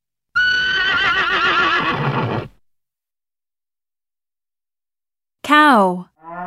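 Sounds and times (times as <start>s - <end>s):
horse neighing: 0.4s - 2.5s
speech: 5.5s - 6.1s.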